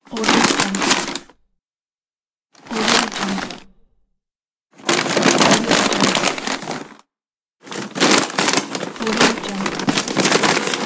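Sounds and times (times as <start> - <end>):
paper bag rustling: 0.1 - 1.4, 2.7 - 4.0, 4.8 - 7.0, 7.6 - 10.8.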